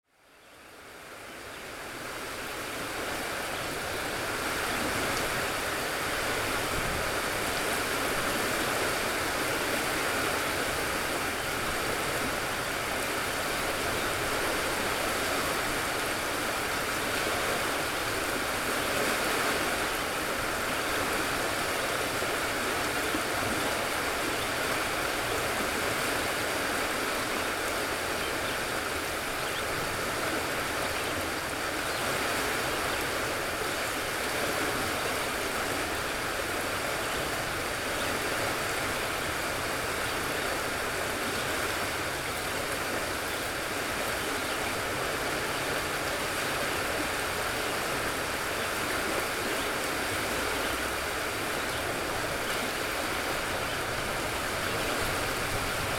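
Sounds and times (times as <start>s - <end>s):
water ambience on Cana Island: 0.2s - 55.9s.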